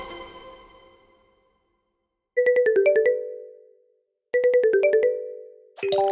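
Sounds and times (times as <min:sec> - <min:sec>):
phone playing a short melodic ringtone for an incoming call: 0:02.4 - 0:06.1.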